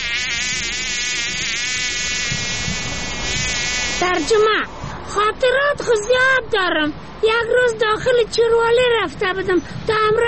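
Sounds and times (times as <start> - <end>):
fly buzzing: 0.0 - 4.5
speech: 4.0 - 10.2.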